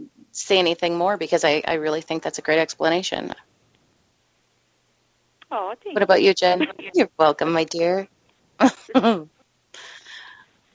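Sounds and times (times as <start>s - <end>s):
speech: 0.4s - 3.5s, 5.5s - 9.9s
person coughing: 8.7s - 9.3s.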